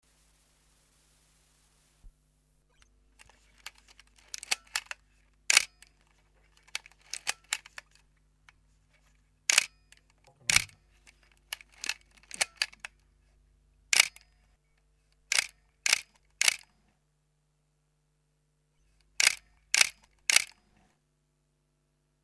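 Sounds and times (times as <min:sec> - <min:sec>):
household camera: 0:03.2 - 0:08.0, 0:09.5 - 0:13.0, 0:14.0 - 0:14.3, 0:15.3 - 0:16.7, 0:19.2 - 0:20.6.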